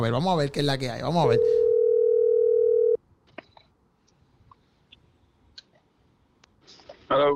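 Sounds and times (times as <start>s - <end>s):
speech: 0.0s - 1.6s, 7.1s - 7.3s
person answering phone: 1.2s - 3.0s
telephone ringback tone: 1.3s - 3.0s.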